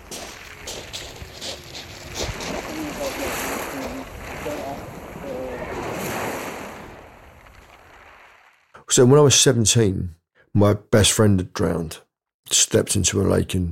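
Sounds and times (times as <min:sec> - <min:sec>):
wind noise: 0:00.0 - 0:08.0
waves breaking along the Kent coast in the south of England: 0:00.0 - 0:08.7
speech: 0:09.0 - 0:13.6.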